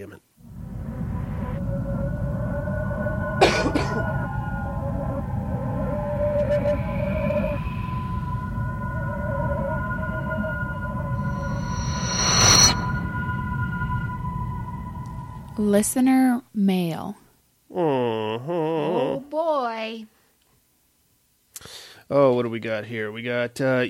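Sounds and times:
speech: 0.0s - 0.3s, 15.6s - 20.1s, 22.1s - 23.8s
faint tonal noise: 0.0s - 17.1s
steady low hum: 0.4s - 16.0s
coughing: 3.4s - 4.1s.

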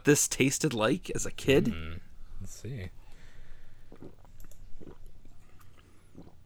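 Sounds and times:
speech: 0.0s - 3.0s
low steady hum: 0.0s - 6.4s
chewing on a snack during a live tasting: 3.9s - 6.4s.

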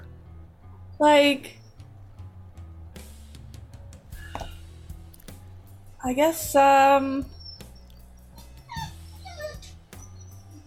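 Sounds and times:
speech: 1.0s - 1.6s, 6.0s - 7.4s
dog whimpering: 7.2s - 10.6s.

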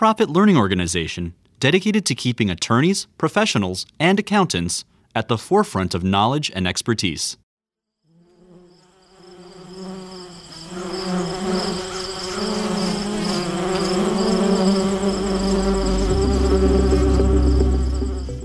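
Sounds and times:
speech: 0.0s - 7.4s
bee buzzing with a droning hum: 8.0s - 18.4s.

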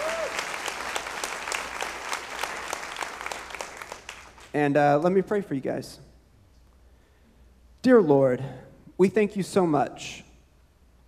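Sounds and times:
crowd clapping for graduating students: 0.0s - 4.6s
speech: 4.5s - 6.1s, 7.8s - 10.3s.

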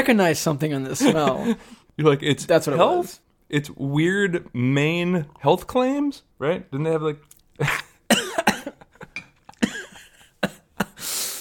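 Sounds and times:
speech: 0.0s - 7.8s
laughter: 1.0s - 1.8s
person coughing after swallowing the wrong way: 7.6s - 11.0s.

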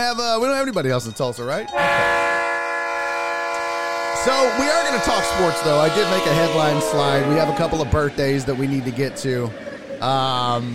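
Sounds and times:
speech: 0.0s - 2.3s, 4.2s - 10.7s
train horn sound effect as a livestream hype-train alert: 1.7s - 9.0s.

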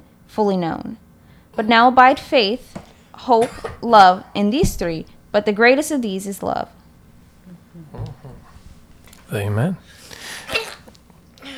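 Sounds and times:
speech: 0.3s - 1.0s, 1.6s - 6.8s, 9.3s - 10.0s
person sneezing with a soft hiss of breath: 7.5s - 11.5s.

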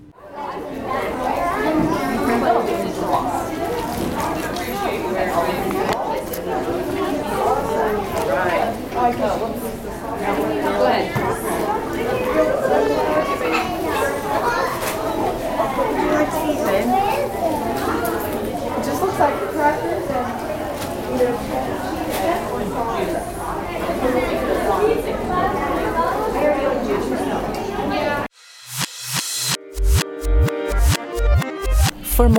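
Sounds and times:
overlapping chatter from many people in a library branch: 0.0s - 32.3s
children's voices and play in a library branch: 0.1s - 28.3s.

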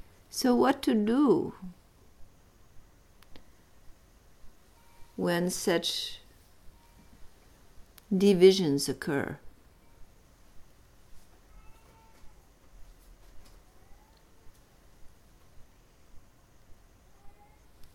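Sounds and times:
steady hiss: 0.0s - 17.9s
speech: 0.3s - 1.8s, 5.2s - 6.2s, 8.1s - 9.4s
soft regular ticks: 3.2s - 4.6s, 7.2s - 8.1s, 10.0s - 16.8s
cat meowing faintly: 11.4s - 12.6s.

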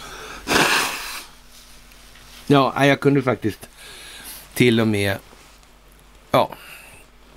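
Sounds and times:
forceful nose blow: 0.0s - 1.4s
speech: 2.5s - 4.0s, 4.6s - 5.3s, 6.3s - 6.7s.

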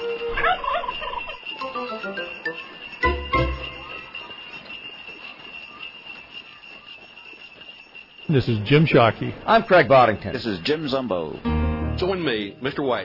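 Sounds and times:
turkeys gobbling: 0.0s - 4.2s
faint metallic tinkle: 0.0s - 11.4s
speech: 8.3s - 13.0s.

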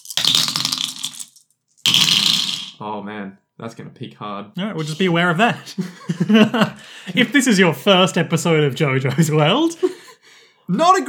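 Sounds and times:
dice clattering and rattling as they are rolled: 0.0s - 2.8s
speech: 2.8s - 10.0s, 10.7s - 11.0s
laughter: 4.8s - 10.2s.

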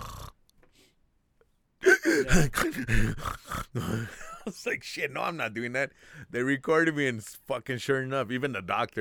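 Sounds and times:
man imitating his gasping labored breathing during sleep: 1.8s - 4.2s
speech: 2.2s - 8.9s.

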